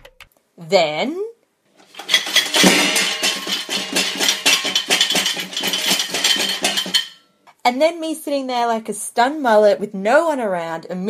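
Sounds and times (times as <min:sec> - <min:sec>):
speech: 0:00.6 - 0:01.2, 0:07.7 - 0:11.0
dishes, pots and cutlery crashing in a recreated earthquake: 0:01.9 - 0:07.2.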